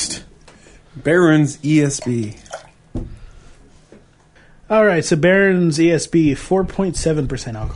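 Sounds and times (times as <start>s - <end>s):
speech: 1.0s - 3.1s, 4.7s - 7.7s
skunked beer dumped into a dump bucket: 1.9s - 2.8s.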